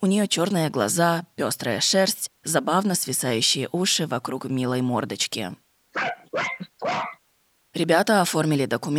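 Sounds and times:
speech: 0:00.0 - 0:07.1, 0:07.8 - 0:08.9
dog barking: 0:06.0 - 0:07.2.

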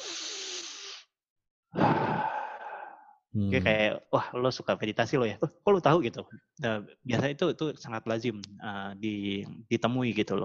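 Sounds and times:
long deep breath in and out: 0:00.0 - 0:01.1, 0:01.7 - 0:03.2
speech: 0:03.4 - 0:10.4.

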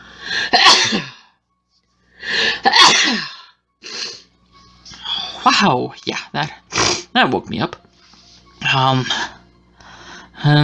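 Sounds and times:
person sneezing: 0:00.5 - 0:01.3, 0:02.6 - 0:04.2, 0:06.7 - 0:07.1
sniff: 0:03.8 - 0:04.3, 0:06.7 - 0:07.1
speech: 0:05.6 - 0:07.8, 0:08.7 - 0:09.3, 0:10.4 - 0:10.6.

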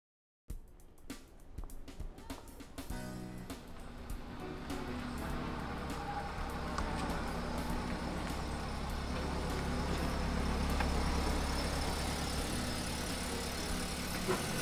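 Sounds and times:
van engine rumbling while pulling into a parking lot: 0:03.3 - 0:14.6.

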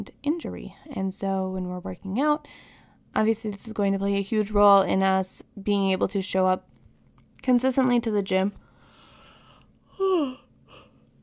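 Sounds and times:
speech: 0:00.0 - 0:06.7, 0:07.4 - 0:08.6
person yawning: 0:09.9 - 0:10.8.

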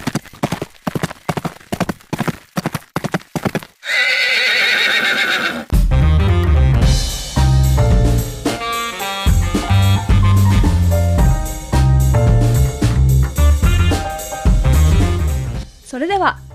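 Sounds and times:
horse hooves clip-clopping: 0:00.0 - 0:05.4
horse whinnying: 0:03.8 - 0:05.7
music: 0:05.7 - 0:16.5.

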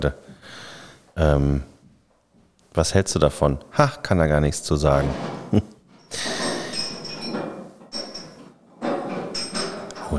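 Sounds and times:
speech: 0:00.0 - 0:01.7, 0:02.8 - 0:06.3
glass bottles clinking and rattling together: 0:04.9 - 0:10.1.

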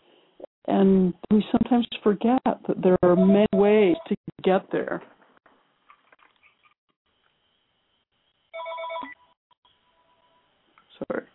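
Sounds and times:
speech: 0:00.7 - 0:05.2
phone ringing with an incoming call: 0:03.2 - 0:04.1, 0:08.6 - 0:09.2.

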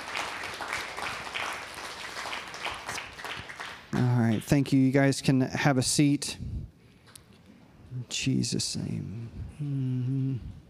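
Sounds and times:
church audience clapping during a morning service: 0:00.0 - 0:04.8
speech: 0:04.4 - 0:06.5, 0:08.1 - 0:09.8.

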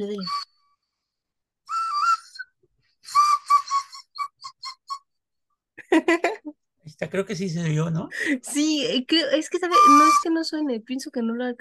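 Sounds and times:
speech: 0:00.0 - 0:00.5, 0:05.9 - 0:06.3, 0:07.0 - 0:11.5
bright warbling birthday whistles: 0:00.0 - 0:05.2, 0:09.7 - 0:10.4.

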